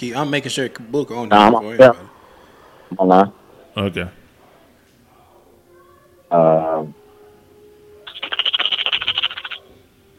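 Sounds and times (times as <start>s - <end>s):
speech: 0.0s - 2.1s, 2.9s - 4.2s, 6.3s - 7.0s
dice being shaken and rattling: 8.1s - 9.6s.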